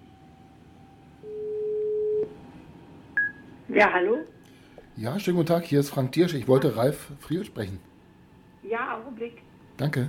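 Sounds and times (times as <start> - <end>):
low telephone ringback tone during outgoing call: 1.2 - 2.2
speech: 3.7 - 4.4, 5.0 - 7.9, 8.6 - 10.0.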